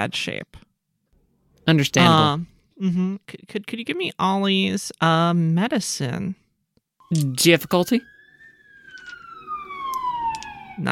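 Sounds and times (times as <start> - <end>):
speech: 0.0 - 0.7, 1.6 - 6.4, 7.1 - 8.1
voice imitating an ambulance siren: 2.0 - 2.4, 9.6 - 10.9.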